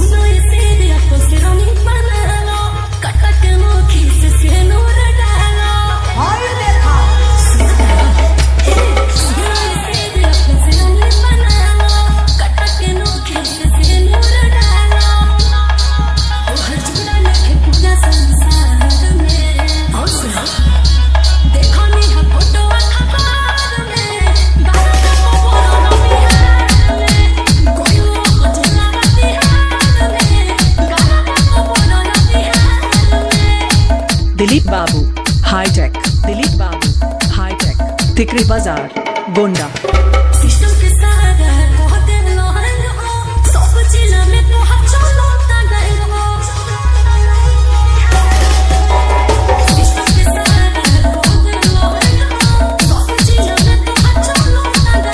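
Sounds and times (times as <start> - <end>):
Bhojpuri DJ song with hard vibration bass mix: 0.0 - 55.1.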